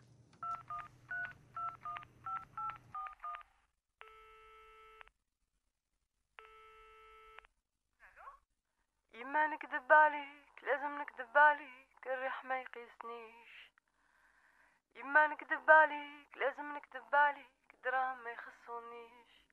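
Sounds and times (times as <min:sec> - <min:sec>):
phone keypad beeps dialing a number: 0:00.4 - 0:03.5
phone ringing tones on the line: 0:00.4 - 0:05.1
speech: 0:09.3 - 0:13.7, 0:15.0 - 0:19.3.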